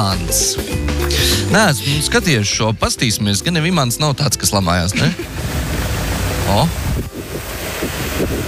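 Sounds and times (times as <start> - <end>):
speech: 0.0 - 5.9, 6.5 - 7.1
wind blowing by the sea: 4.9 - 8.4.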